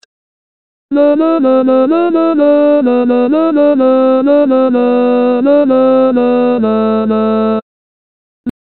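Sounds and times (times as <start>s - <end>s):
tenor singing sevillanas introduction: 0.9s - 7.6s.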